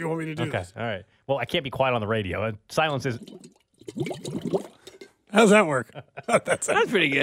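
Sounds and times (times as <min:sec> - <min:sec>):
speech: 0:00.0 - 0:07.2
air blown through water in a bong: 0:02.9 - 0:05.2
laughter: 0:06.0 - 0:07.2.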